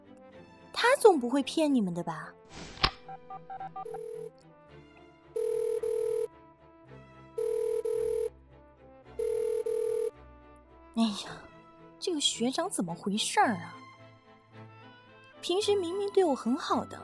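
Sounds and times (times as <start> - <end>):
faint music: 0.0 - 6.3, 7.4 - 8.3, 9.2 - 10.1, 10.9 - 14.6, 15.2 - 17.0
speech: 0.8 - 2.8, 3.4 - 4.5, 11.0 - 13.8, 15.4 - 17.0
phone dialing beeps: 3.0 - 4.3, 5.4 - 6.3, 7.4 - 8.3, 9.2 - 10.1.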